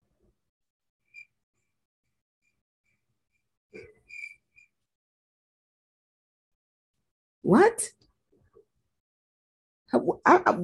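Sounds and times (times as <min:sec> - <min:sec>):
cricket chirping in a thin high trill: 0:01.0 - 0:01.7, 0:02.4 - 0:04.8
speech: 0:07.4 - 0:08.0, 0:09.9 - 0:10.6.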